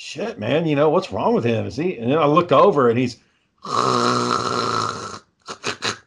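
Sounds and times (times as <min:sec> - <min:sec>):
speech: 0:00.1 - 0:04.8
voice imitating loud snoring: 0:03.6 - 0:06.0.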